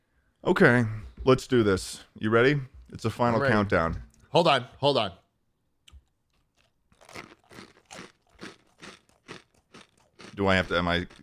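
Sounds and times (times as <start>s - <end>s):
speech: 0.4s - 5.2s, 10.4s - 11.2s
person chewing food with crunchy bites: 5.9s - 11.2s.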